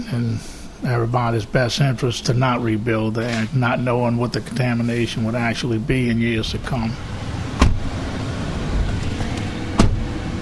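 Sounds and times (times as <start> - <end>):
speech: 0.0 - 7.2
pickup truck engine rumbling from inside the cab while driving: 0.0 - 10.4
sharp thumps or knocks: 7.6 - 7.9.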